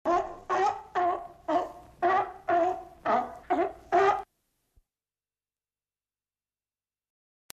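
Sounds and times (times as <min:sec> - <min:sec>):
seal: 0:00.1 - 0:04.3.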